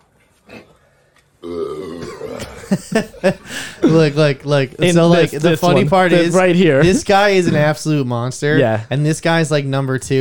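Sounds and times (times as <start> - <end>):
loud sustained belch during eating contest: 1.4 - 2.7
punchy gulping bursts: 1.4 - 2.9, 5.4 - 7.8
laughter: 2.2 - 8.8
speech: 2.7 - 10.1.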